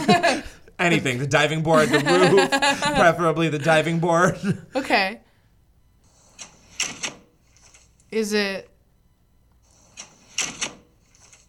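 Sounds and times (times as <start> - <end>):
laughter: 0.0 - 1.1, 1.7 - 3.2
speech: 0.1 - 5.2, 8.1 - 8.7
side door of a house opening and closing: 6.2 - 7.9, 9.8 - 11.4.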